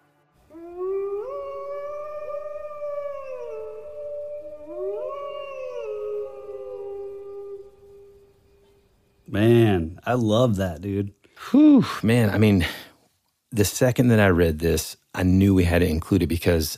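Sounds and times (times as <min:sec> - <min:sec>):
eerie howling: 0:00.4 - 0:08.6
speech: 0:09.3 - 0:12.9, 0:13.5 - 0:16.7.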